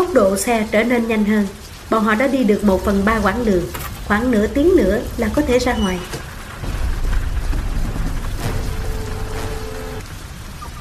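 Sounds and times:
heavy rain pouring down as darkness falls: 0:00.0 - 0:10.8
speech: 0:00.2 - 0:06.2
low rumbling under heavy rain: 0:02.8 - 0:10.7.

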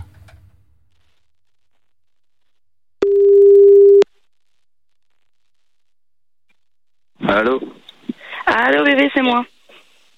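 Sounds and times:
telephone ringing tone of an outgoing call: 0:03.0 - 0:04.0
speech: 0:07.4 - 0:07.8, 0:08.9 - 0:09.6.

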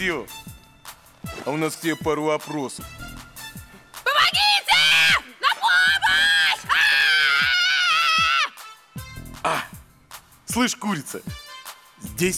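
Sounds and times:
speech: 0:00.0 - 0:00.5, 0:01.4 - 0:03.1, 0:10.6 - 0:11.4, 0:12.2 - 0:12.3
woman tied to a chair with tape screaming: 0:04.1 - 0:08.6.

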